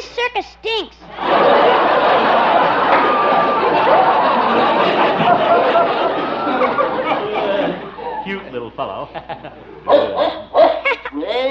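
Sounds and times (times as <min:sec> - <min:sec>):
speech: 0:00.2 - 0:02.1, 0:08.5 - 0:10.4
laughter: 0:01.1 - 0:11.3
dog barking, scared by a cow: 0:09.9 - 0:11.0.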